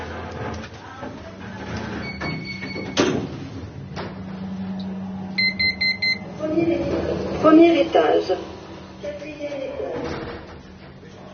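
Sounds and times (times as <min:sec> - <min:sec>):
elevator doors sliding shut with a soft thump: 0:00.0 - 0:11.3
low elevator motor hum: 0:00.0 - 0:11.3
high elevator beeps: 0:05.4 - 0:06.2
speech: 0:07.4 - 0:08.5.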